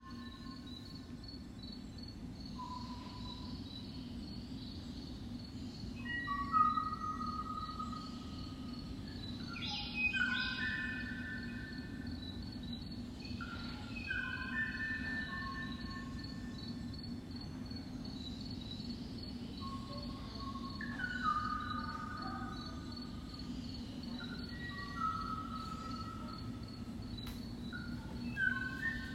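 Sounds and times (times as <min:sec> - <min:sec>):
Kauai oo singing: 0:00.0 - 0:29.1.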